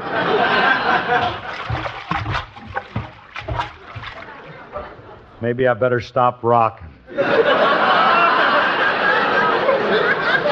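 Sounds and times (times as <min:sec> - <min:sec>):
laughter: 0:00.0 - 0:02.1, 0:03.7 - 0:05.4, 0:07.1 - 0:10.4
water sloshing and gurgling inside a full stomach: 0:00.6 - 0:05.4
speech: 0:05.4 - 0:07.6.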